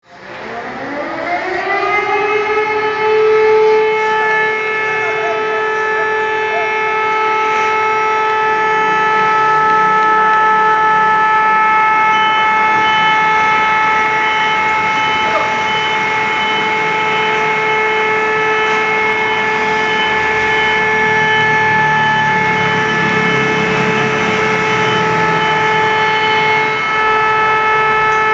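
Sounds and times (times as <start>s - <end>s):
emergency alert system alarm in Greece: 0.0s - 28.3s.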